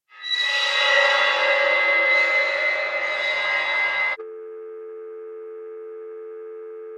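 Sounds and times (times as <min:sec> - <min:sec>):
harsh electronic screech on a telephone line: 0:00.1 - 0:04.2
steady low telephone dial tone: 0:04.2 - 0:06.9.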